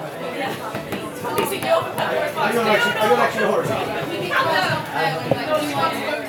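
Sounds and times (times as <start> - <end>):
crowd chatter in a packed pub: 0.0 - 6.2.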